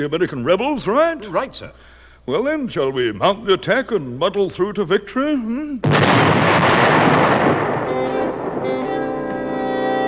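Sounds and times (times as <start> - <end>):
speech: 0.0 - 7.3
rumbling burst of gunfire: 5.8 - 9.5
sustained brass tones of English horns: 7.8 - 10.0.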